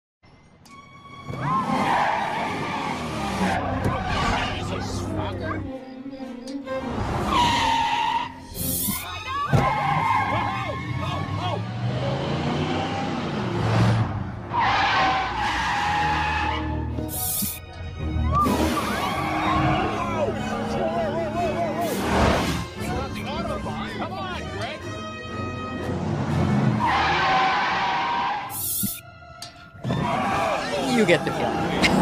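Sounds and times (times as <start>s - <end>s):
roaring car engines: 0.6s - 8.6s, 9.4s - 31.9s
car tires skidding and squealing in a car chase: 1.2s - 4.9s, 6.8s - 17.6s, 18.3s - 20.6s, 25.9s - 29.0s, 29.8s - 31.9s.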